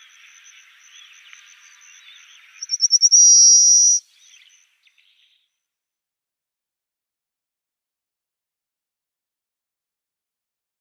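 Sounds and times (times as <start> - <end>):
faint bird twittering: 0.0 - 5.6
pale rock sparrow singing buzzy trill: 1.8 - 5.3.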